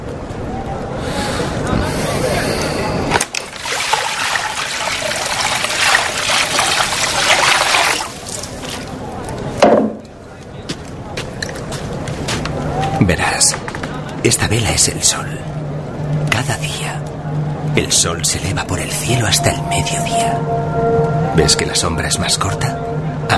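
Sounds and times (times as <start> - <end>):
faint murmuring: 0.0 - 23.3
water being poured and sloshed: 3.2 - 9.0
speech: 13.4 - 15.7, 16.4 - 17.0, 17.8 - 23.3.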